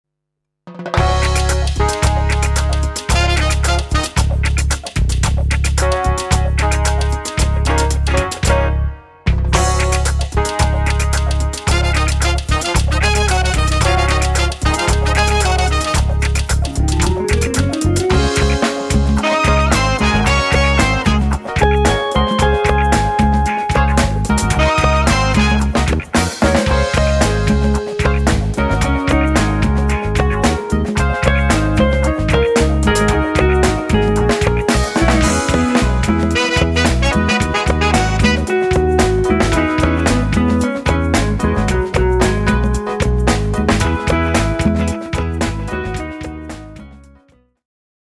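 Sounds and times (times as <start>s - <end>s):
drum playing a warm-up single-stroke pattern: 0.7s - 8.7s, 9.4s - 46.8s.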